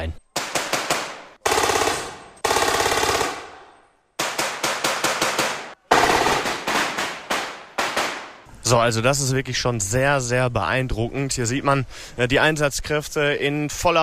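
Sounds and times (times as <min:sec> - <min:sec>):
speech: 0:00.0 - 0:00.2, 0:08.7 - 0:14.0
automatic gunfire in a military urban combat demonstration: 0:00.4 - 0:03.6, 0:04.2 - 0:08.4.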